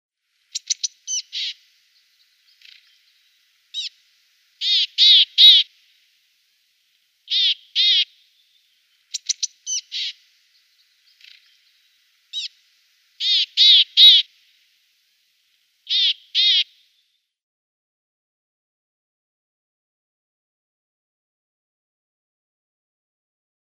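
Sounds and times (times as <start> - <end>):
Siberian tit calls: 0.4 - 4.0, 4.6 - 5.8, 7.3 - 12.6, 13.2 - 14.3, 15.8 - 17.1.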